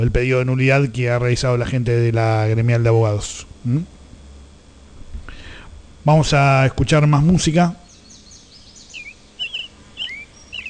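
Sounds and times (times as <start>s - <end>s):
speech: 0.0s - 4.0s, 6.0s - 7.8s
low hiss: 0.0s - 10.6s
small birds chirping: 7.8s - 10.6s.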